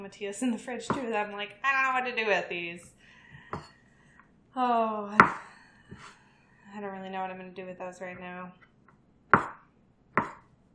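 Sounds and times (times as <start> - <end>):
speech: 0.1 - 3.7, 4.6 - 8.6
knife slicing mushrooms into thin matchsticks: 0.9 - 1.1, 5.2 - 6.2, 10.2 - 10.4.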